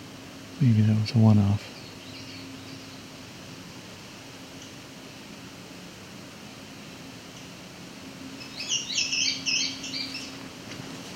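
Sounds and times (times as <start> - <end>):
faint steady low hum: 0.0 - 11.1
speech: 0.6 - 1.7
male indigo bunting singing: 1.4 - 3.2, 8.3 - 10.4.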